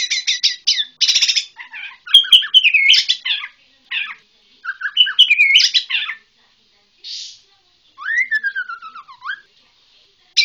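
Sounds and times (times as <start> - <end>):
Bornean white-rumped shama song of whistled and chattering phrases: 0.0 - 6.2, 8.0 - 9.5.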